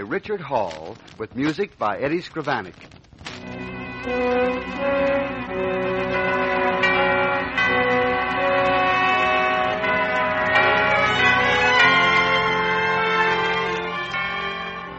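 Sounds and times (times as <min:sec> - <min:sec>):
speech: 0:00.0 - 0:03.0, 0:04.0 - 0:05.8
mission church bells ringing in a continuous peal: 0:03.5 - 0:14.9.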